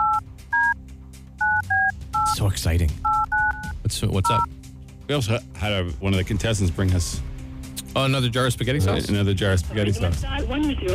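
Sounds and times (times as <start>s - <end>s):
touch-tone phone keypad beeps dialing a phone number: 0.0s - 0.8s, 1.4s - 2.4s, 3.0s - 4.5s
speech: 2.4s - 3.1s, 3.9s - 7.3s, 7.9s - 10.9s.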